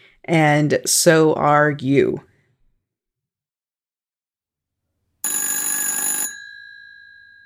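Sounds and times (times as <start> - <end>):
speech: 0.2 - 2.3
old-fashioned telephone bell ringing: 5.2 - 7.4.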